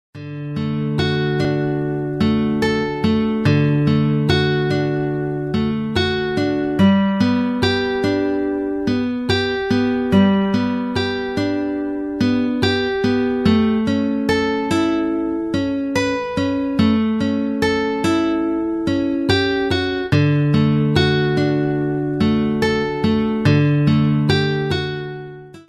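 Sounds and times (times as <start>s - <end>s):
Hawaiian guitar: 0.2s - 25.6s.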